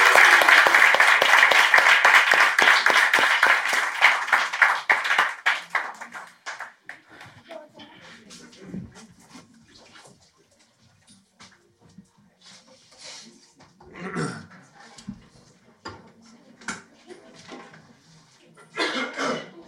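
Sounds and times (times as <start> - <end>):
audience applauding the newly baptized: 0.0 - 7.5
faint murmuring: 5.5 - 19.6.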